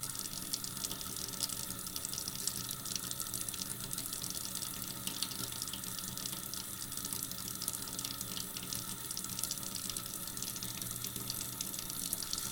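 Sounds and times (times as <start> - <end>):
tap water running into a basin: 0.0 - 12.5.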